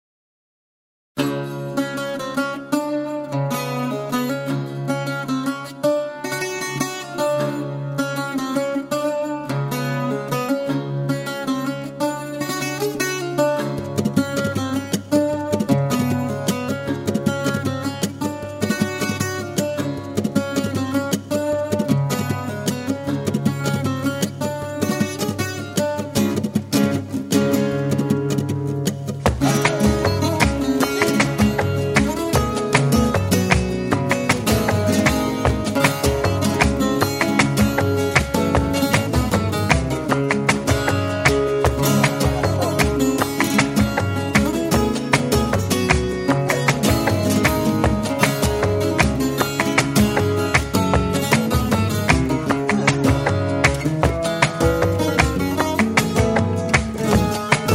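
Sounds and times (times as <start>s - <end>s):
guitar falseta in tangos style: 1.2s - 57.7s.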